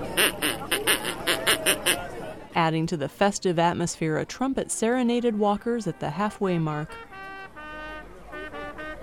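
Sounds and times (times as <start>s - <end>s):
person imitating a duck with nasal quacks: 0.2s - 2.0s
speech: 2.6s - 7.1s.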